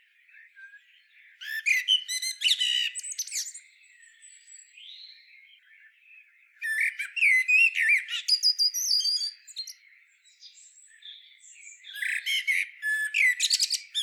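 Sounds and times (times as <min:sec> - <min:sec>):
common blackbird Turdus merula singing: 0:00.0 - 0:14.0.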